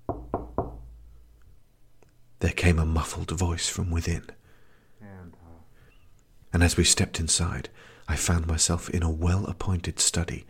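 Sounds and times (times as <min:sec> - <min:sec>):
firm knocks on a heavy dark mahogany door: 0:00.0 - 0:00.9
speech: 0:02.4 - 0:04.4, 0:06.6 - 0:10.4.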